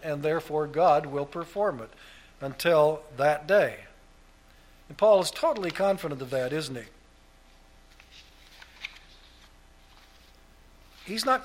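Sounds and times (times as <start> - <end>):
speech: 0.0 - 3.9, 4.9 - 7.0, 11.1 - 11.4
hymnbook pages rustling while being flipped: 7.9 - 11.4.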